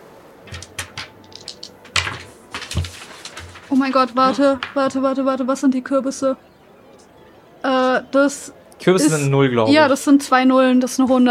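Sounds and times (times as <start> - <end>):
dice clattering across a hard surface: 0.5 - 5.0
speech: 3.7 - 6.5, 7.9 - 11.2.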